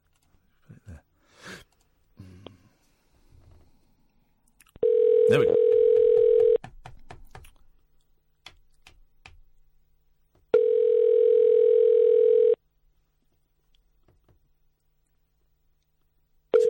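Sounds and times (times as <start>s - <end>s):
buzzy electronic phone ringback tone on an outgoing call: 4.8s - 6.6s, 10.6s - 12.6s
speech: 5.3s - 5.6s.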